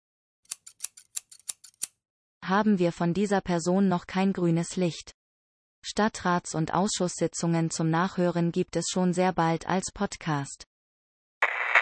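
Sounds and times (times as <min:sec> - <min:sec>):
scissors snipping: 0:00.5 - 0:02.0
speech: 0:02.4 - 0:05.2, 0:05.8 - 0:10.7.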